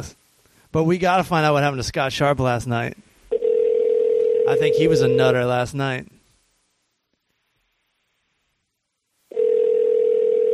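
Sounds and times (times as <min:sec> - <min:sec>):
speech: 0:00.0 - 0:03.0, 0:04.5 - 0:06.2
phone line ringing tone while calling: 0:03.3 - 0:05.4, 0:09.3 - 0:10.5.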